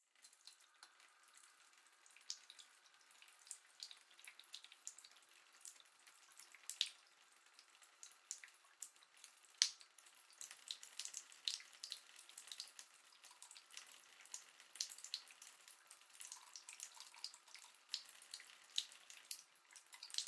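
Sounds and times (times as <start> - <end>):
household bathtub filling up with water: 0.0 - 20.2.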